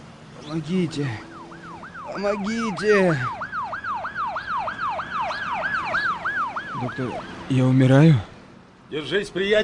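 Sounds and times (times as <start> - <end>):
speech: 0.5 - 1.3, 2.1 - 3.4, 6.8 - 8.3, 8.9 - 9.6
ambulance siren yelping: 0.9 - 7.5.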